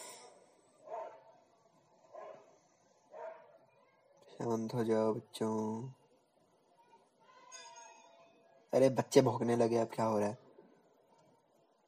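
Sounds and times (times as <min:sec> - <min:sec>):
dog barking: 0:00.8 - 0:01.4, 0:02.1 - 0:02.5, 0:03.1 - 0:03.6
speech: 0:04.4 - 0:06.0, 0:08.8 - 0:10.4.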